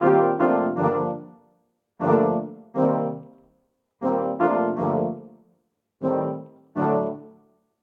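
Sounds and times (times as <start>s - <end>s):
MIDI brass quartet playing a chord progression in G minor: 0.0s - 1.2s, 2.0s - 3.2s, 4.0s - 5.2s, 6.0s - 7.2s.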